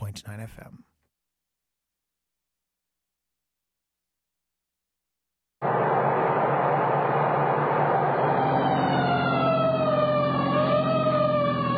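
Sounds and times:
speech: 0.2s - 0.9s
fire engine siren wailing responding to an alarm on Pine Street: 5.6s - 11.7s.

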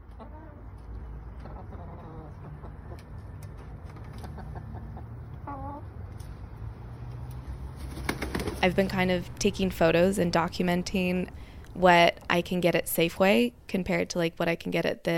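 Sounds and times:
backyard chickens clucking and squawking: 0.0s - 6.2s
speech: 8.6s - 15.1s.

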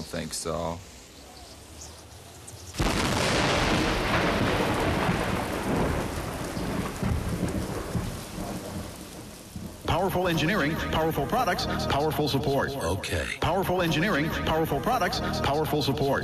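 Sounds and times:
speech: 0.0s - 1.0s, 10.0s - 16.2s
loud crack of rolling thunder: 2.8s - 10.1s
steady heavy rain hissing: 2.8s - 16.2s.

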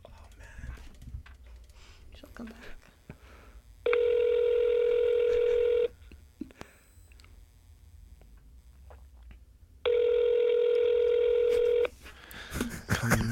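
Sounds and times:
speech: 2.4s - 2.9s
phone call ringing tone on speakerphone: 3.9s - 5.9s, 9.8s - 11.9s
laughter: 12.4s - 13.2s.

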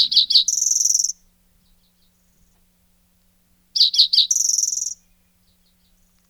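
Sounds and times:
spotted towhee song: 0.0s - 2.4s, 3.8s - 6.0s.

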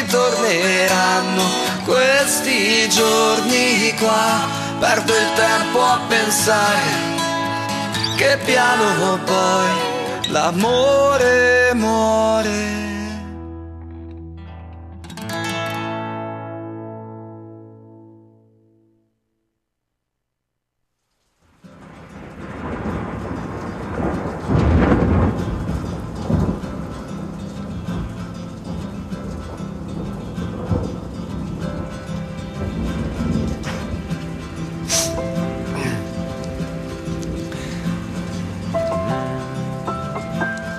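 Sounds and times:
heavy rain pouring: 0.0s - 13.2s, 21.2s - 40.7s
speech: 0.1s - 7.1s, 8.2s - 12.8s
thunder: 21.7s - 38.4s.

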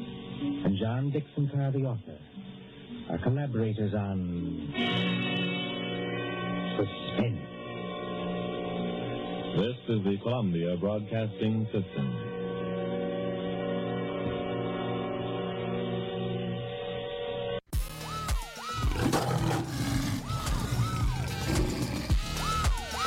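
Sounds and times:
old-sounding music: 0.0s - 23.0s
speech: 0.4s - 2.2s, 3.1s - 5.3s, 6.8s - 7.5s, 9.6s - 12.2s
lion roaring: 18.8s - 22.4s.

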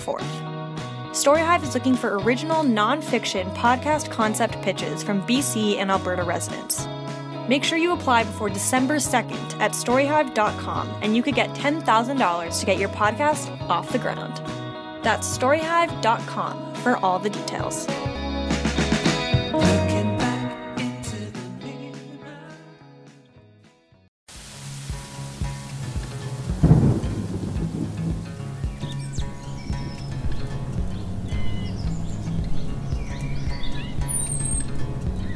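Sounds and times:
speech: 0.0s - 0.6s, 1.2s - 18.2s
music: 0.0s - 35.3s
steady broadband rain hiss: 24.3s - 30.2s
bird chirps and tweets: 28.5s - 35.3s.

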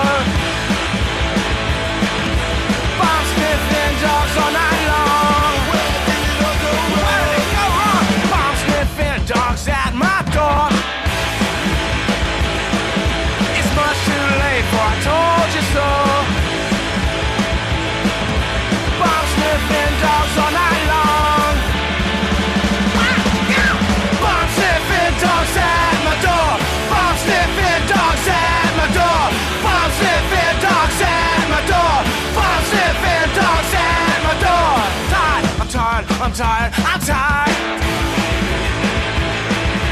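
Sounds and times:
distorted guitars: 0.0s - 39.9s
driving drums: 0.0s - 39.9s
loud punk rock song: 0.0s - 39.9s
shouted vocals: 3.0s - 8.7s, 22.9s - 35.6s
speech: 36.2s - 38.6s.

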